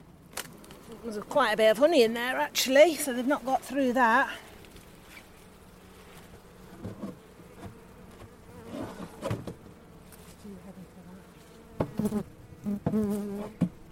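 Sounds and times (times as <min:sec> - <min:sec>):
honeybees buzzing inside an open hive: 0:00.0 - 0:13.9
speech: 0:00.9 - 0:04.5, 0:13.0 - 0:13.6.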